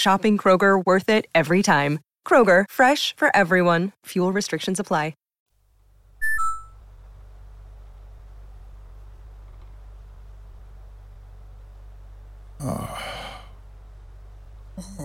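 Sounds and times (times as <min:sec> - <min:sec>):
speech: 0:00.0 - 0:05.2, 0:12.6 - 0:12.9
steady low hum: 0:05.6 - 0:15.0
two-note electronic alarm beep from an internal conduction alarm on a moonbase: 0:06.2 - 0:06.8.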